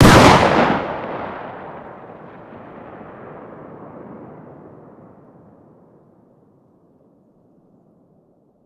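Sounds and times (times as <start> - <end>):
distant 12-gauge shotgun fire outdoors: 0.0 - 4.4.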